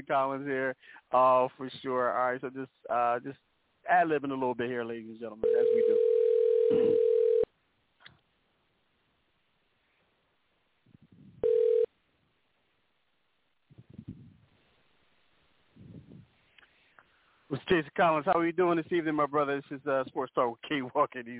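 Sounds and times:
speech: 0.0 - 6.1, 17.6 - 21.3
ringback tone of an outgoing phone call: 5.4 - 7.5, 11.4 - 11.9
faint rustles and thumps: 13.7 - 14.8, 15.7 - 16.4.

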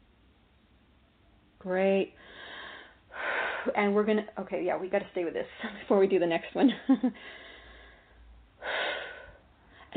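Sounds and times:
speech: 1.6 - 2.4, 3.6 - 7.5
deep breathing: 2.1 - 3.7, 7.2 - 9.9.

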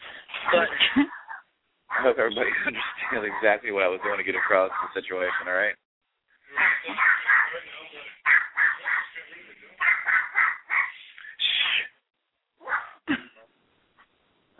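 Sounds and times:
dog barking over a phone line: 0.4 - 5.7, 6.6 - 7.6, 8.2 - 9.1, 9.8 - 11.0, 12.6 - 13.0
speech: 0.5 - 1.2, 2.0 - 5.8.

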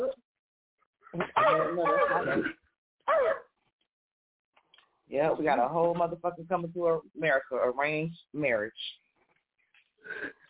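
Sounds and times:
person imitating a dog barking: 1.2 - 2.5, 3.1 - 3.4
speech: 1.2 - 2.6, 5.1 - 9.0, 10.0 - 10.4.

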